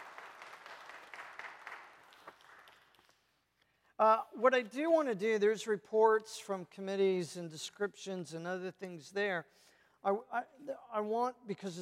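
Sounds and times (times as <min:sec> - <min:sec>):
audience applauding: 0:00.0 - 0:03.3
speech: 0:04.0 - 0:11.7.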